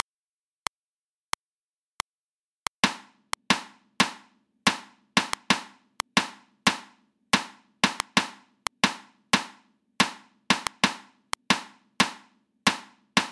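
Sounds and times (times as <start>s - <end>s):
reversed sixteenth-note rhythms at 90 bpm: 2.8s - 13.3s.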